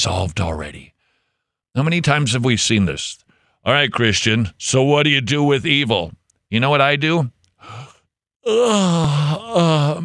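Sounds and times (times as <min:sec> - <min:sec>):
speech: 0:00.0 - 0:01.0, 0:01.8 - 0:10.0
breathy intake: 0:07.6 - 0:10.0
exaggerated yawn with voiced moaning: 0:07.6 - 0:10.0.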